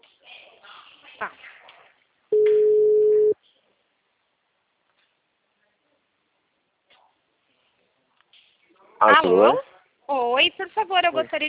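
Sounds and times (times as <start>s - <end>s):
speech: 1.2s - 1.5s, 9.0s - 11.4s
telephone ringing tone on the line: 2.4s - 3.3s.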